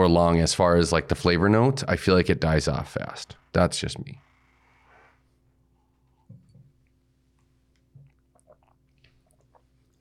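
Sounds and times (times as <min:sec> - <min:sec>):
speech: 0:00.0 - 0:04.3
quiet hum: 0:00.0 - 0:10.0
swallowing a drink: 0:07.8 - 0:10.0.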